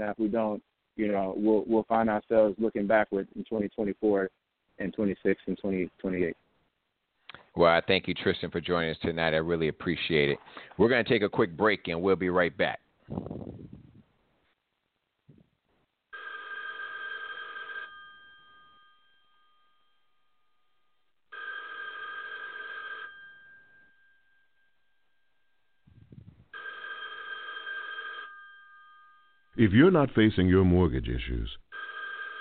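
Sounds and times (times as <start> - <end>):
speech: 0.0 - 6.4, 7.6 - 13.8, 29.6 - 31.6
telephone ringing with electronic trill: 16.1 - 20.5, 21.3 - 32.3.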